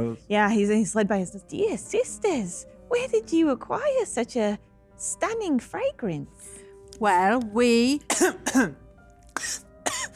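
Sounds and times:
speech: 0:00.0 - 0:08.8, 0:09.4 - 0:10.1
breathy coughing bursts: 0:08.1 - 0:08.8, 0:09.4 - 0:10.1
throat clearing caused by ginger biscuit crumbs: 0:09.4 - 0:10.1.

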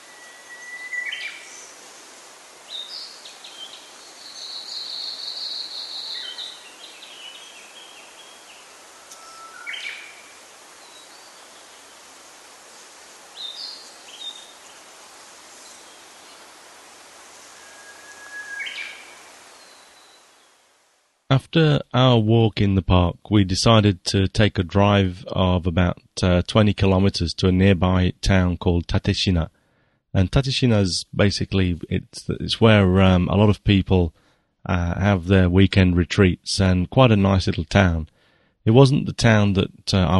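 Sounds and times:
bird calls and chirps in a park: 0:00.0 - 0:01.8, 0:02.7 - 0:12.0, 0:13.3 - 0:16.5, 0:17.4 - 0:20.6
distant running water in a park: 0:00.0 - 0:21.0
speech: 0:21.3 - 0:40.1.

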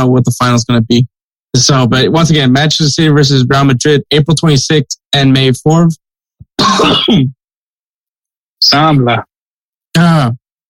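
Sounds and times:
speech: 0:00.0 - 0:06.0, 0:06.6 - 0:07.4, 0:08.6 - 0:09.3, 0:10.0 - 0:10.4
rasping cough: 0:06.5 - 0:07.4
throat clearing: 0:06.5 - 0:07.4.

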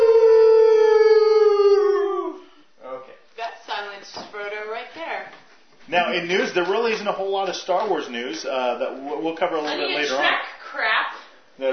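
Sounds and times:
group of people howling like dogs: 0:00.0 - 0:02.5
speech: 0:06.0 - 0:11.7.

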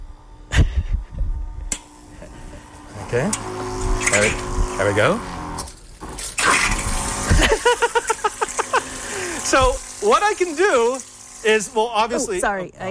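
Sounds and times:
small battery electric water pump whirring: 0:00.0 - 0:12.6
laughter: 0:02.1 - 0:02.8, 0:07.3 - 0:09.4
speech: 0:03.1 - 0:05.4, 0:09.5 - 0:12.8
water spraying from pump: 0:03.1 - 0:12.4.

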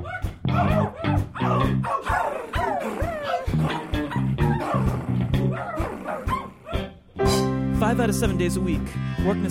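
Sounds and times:
several dogs in a neighborhood barking and yipping: 0:00.0 - 0:07.0
speech: 0:07.9 - 0:09.4.

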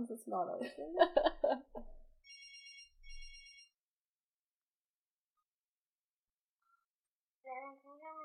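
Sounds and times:
speech: 0:00.0 - 0:02.4
laughter: 0:00.6 - 0:01.9
telephone ringing with electronic trills: 0:02.2 - 0:03.8.

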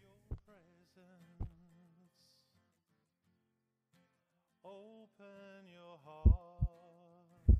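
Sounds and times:
deep heavy heartbeat thumps: 0:06.2 - 0:06.7.

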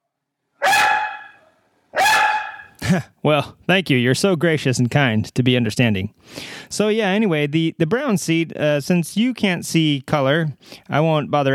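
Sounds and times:
dog barking: 0:00.6 - 0:02.7
laughter: 0:02.8 - 0:03.2
speech: 0:02.9 - 0:11.5.

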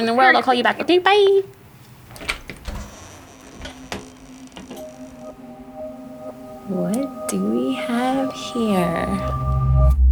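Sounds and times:
speech: 0:00.0 - 0:01.6, 0:06.7 - 0:09.9
low steady hum: 0:01.5 - 0:10.1
door creaking and scraping open: 0:02.0 - 0:05.2
faint tone: 0:02.9 - 0:10.1.

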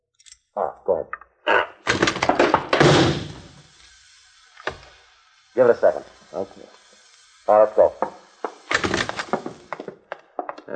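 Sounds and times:
speech: 0:00.6 - 0:01.6, 0:05.6 - 0:06.8, 0:07.5 - 0:08.2
door yanked open with rattling knocks: 0:01.8 - 0:03.5, 0:08.0 - 0:09.9
gas canister tossed inside with a loud thud: 0:01.9 - 0:03.4.

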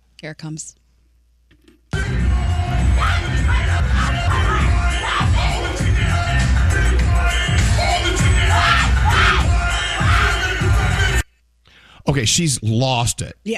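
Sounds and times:
speech: 0:00.2 - 0:00.8, 0:12.1 - 0:13.5
woman on a phone call: 0:00.2 - 0:00.8
thumping, pulsing bass music in a nightclub: 0:01.9 - 0:11.2
dense nightclub crowd roaring and shouting: 0:02.0 - 0:11.2.

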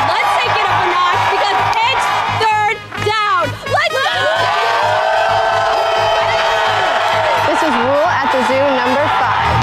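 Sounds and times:
stadium crowd cheering and yelling for a football team on defense: 0:00.0 - 0:09.6.

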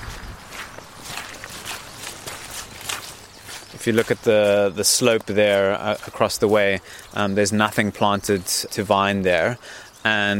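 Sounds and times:
continuous outdoor noise: 0:00.0 - 0:10.3
footsteps of people walking up a vineyard slope: 0:00.0 - 0:10.3
speech: 0:03.8 - 0:10.3.

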